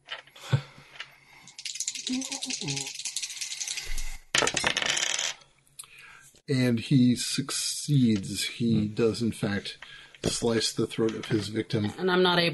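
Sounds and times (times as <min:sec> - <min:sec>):
dice rolled during a tabletop game: 0:01.5 - 0:05.3
speech: 0:02.1 - 0:03.0, 0:06.5 - 0:12.5.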